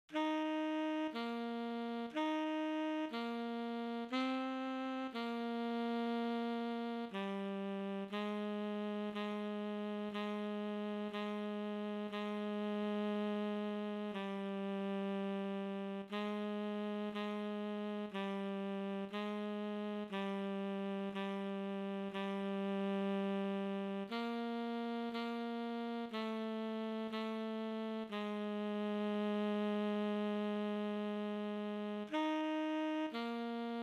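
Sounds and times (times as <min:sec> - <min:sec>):
tenor sax chorale and recessional: 0:00.1 - 0:33.8.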